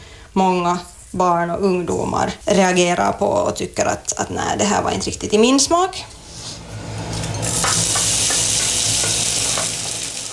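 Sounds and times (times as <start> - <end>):
speech: 0.4 - 6.2
Baltic herring and other ingredients simmering in a frying pan: 6.8 - 10.3.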